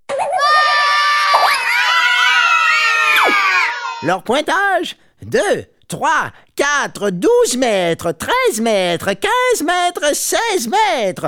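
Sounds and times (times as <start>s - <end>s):
crowd screaming and shouting at a competition: 0.1s - 4.1s
speech: 4.0s - 11.2s.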